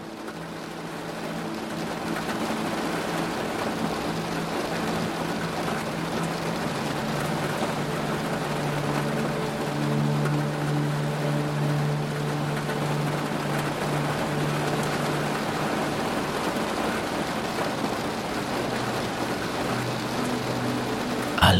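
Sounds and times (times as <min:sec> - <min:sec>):
steady rain drumming on a caravan at night: 0:00.0 - 0:21.4.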